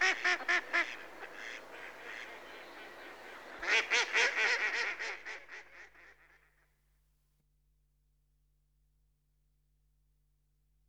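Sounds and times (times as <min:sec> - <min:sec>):
Mallard quacking: 0:00.0 - 0:05.8.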